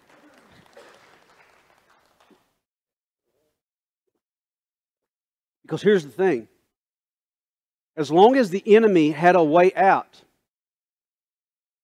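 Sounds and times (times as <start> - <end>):
audience clapping in praise: 0.0 - 2.6
speech: 5.7 - 6.5, 8.0 - 10.2.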